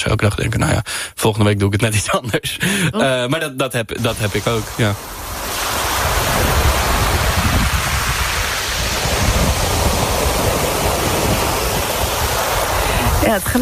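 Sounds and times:
speech: 0.0s - 5.2s, 13.3s - 13.6s
heavy storm wind gusts: 4.0s - 13.6s
rushing water in a heavy storm: 4.0s - 13.6s.

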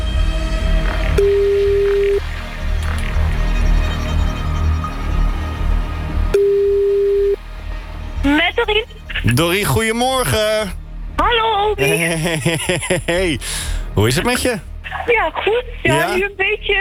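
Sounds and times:
low rumbling background: 0.0s - 16.7s
telephone ringing tone heard down the line: 1.2s - 2.2s, 6.4s - 7.4s
speech: 9.4s - 16.7s
laughter: 11.8s - 13.5s.

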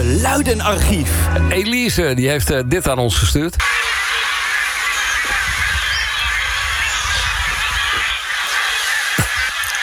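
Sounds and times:
speech: 0.2s - 4.0s
large flock of geese honking overhead: 3.6s - 9.8s.

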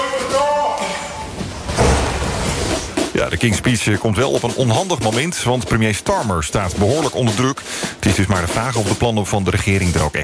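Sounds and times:
heavy door slamming shut: 0.9s - 3.6s
speech: 3.3s - 10.2s.

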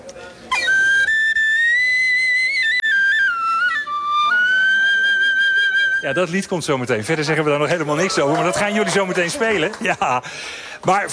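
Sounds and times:
whistle playing a short melodic phrase: 0.5s - 6.4s
laughter: 4.3s - 11.1s
speech: 6.0s - 11.1s.

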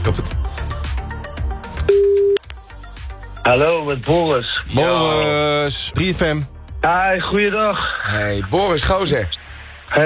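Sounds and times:
speech: 0.1s - 0.4s, 3.5s - 10.0s
telephone ringing tone while placing a call: 1.9s - 2.4s.

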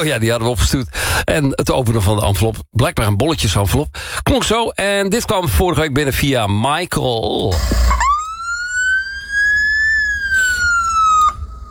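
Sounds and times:
speech: 0.0s - 8.1s
Norwegian ambulance siren wailing: 7.5s - 11.6s.

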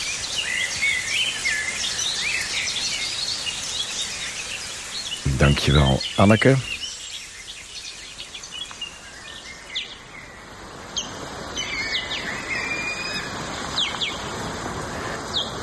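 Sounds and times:
blackcap, blackbird and garden warbler singing: 0.0s - 15.6s
steady hiss of falling rain: 0.0s - 15.6s
steady outdoor hiss: 0.0s - 15.6s
speech: 5.4s - 6.7s.

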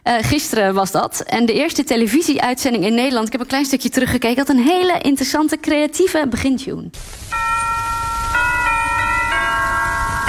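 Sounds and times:
speech: 0.1s - 7.6s
church bells ringing: 7.3s - 10.2s.

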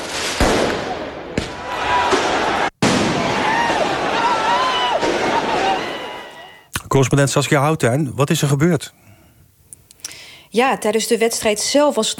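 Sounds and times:
firework bangs in the street: 0.0s - 6.4s
dense noisy street crowd: 0.9s - 6.7s
people shouting: 1.6s - 6.7s
speech: 7.0s - 9.0s, 10.5s - 12.1s.

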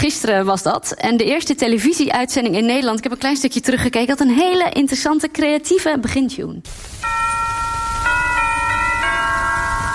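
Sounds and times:
speech: 0.0s - 7.4s
church bells ringing: 7.0s - 9.9s.

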